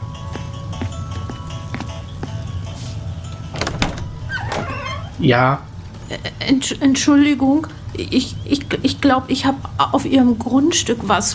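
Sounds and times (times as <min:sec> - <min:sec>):
door latch and handle rattling as a door is opened: 0:03.6 - 0:05.2
speech: 0:05.2 - 0:11.3.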